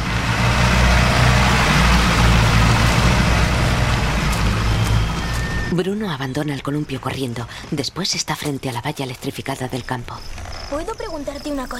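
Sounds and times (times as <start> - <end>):
car engine pulling out of a yard: 0.0 - 7.1
speech: 5.8 - 11.7.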